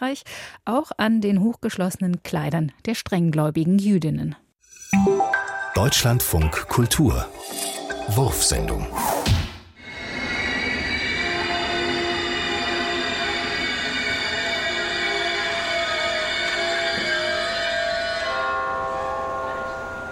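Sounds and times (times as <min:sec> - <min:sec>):
speech: 0:00.0 - 0:09.4
train rumbling into a station: 0:09.9 - 0:17.3
train brakes squealing pulling into a station: 0:09.9 - 0:20.0.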